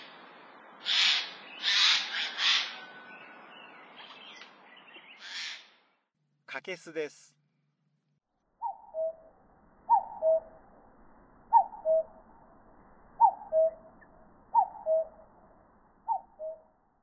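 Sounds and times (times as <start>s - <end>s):
common cuckoo calling: 0.8s - 5.7s, 8.6s - 9.4s, 9.9s - 10.6s, 11.5s - 12.3s, 13.2s - 15.3s, 16.1s - 16.8s
speech: 6.6s - 7.4s.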